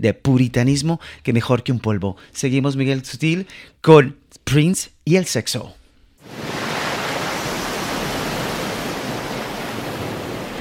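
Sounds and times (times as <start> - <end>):
speech: 0.0 - 6.4
sea waves roaring: 6.2 - 10.6.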